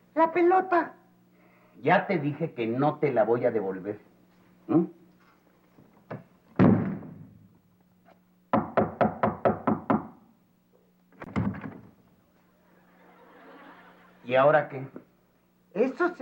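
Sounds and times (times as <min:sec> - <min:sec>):
speech: 0:00.2 - 0:01.0, 0:01.8 - 0:04.1, 0:04.7 - 0:05.0, 0:14.3 - 0:15.1, 0:15.8 - 0:16.2
knocking on a door: 0:08.5 - 0:10.2
laughter: 0:12.4 - 0:14.4.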